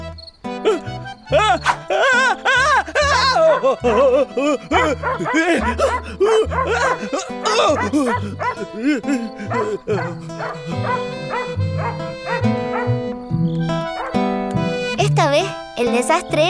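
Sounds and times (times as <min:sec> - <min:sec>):
dense tonal background: 0:00.0 - 0:16.4
laughter: 0:00.6 - 0:12.9
speech: 0:01.3 - 0:01.8, 0:03.6 - 0:13.2, 0:15.3 - 0:16.4
dog barking and yelping at the moon at night: 0:01.6 - 0:01.9, 0:03.4 - 0:03.8, 0:04.7 - 0:08.7, 0:09.5 - 0:13.0, 0:13.9 - 0:14.2.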